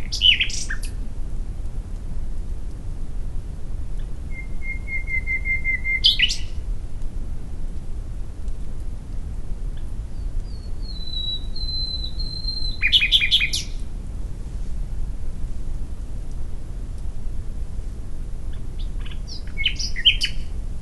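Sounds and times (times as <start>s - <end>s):
common nightingale Luscinia megarhynchos singing: 0.0s - 1.0s, 4.0s - 6.6s, 9.7s - 13.8s, 18.5s - 20.6s
low background hum: 0.0s - 20.8s.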